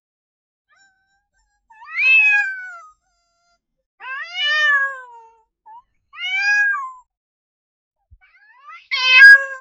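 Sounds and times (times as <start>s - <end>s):
cat crying with wavering meows: 0.7s - 5.5s, 6.2s - 7.1s, 8.2s - 9.5s.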